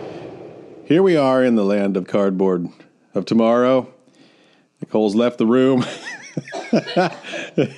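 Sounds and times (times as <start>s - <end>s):
speech: 0.9s - 4.0s, 4.8s - 7.7s
strained breathy sounds of a woman: 4.1s - 4.8s
laughter: 5.8s - 7.7s
woman coughing fit: 6.4s - 7.5s.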